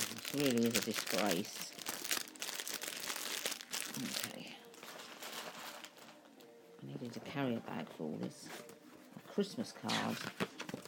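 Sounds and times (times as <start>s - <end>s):
empty packet crumpling: 0.0s - 6.2s
speech: 0.4s - 1.8s, 4.0s - 4.6s, 6.8s - 8.7s, 9.4s - 10.6s.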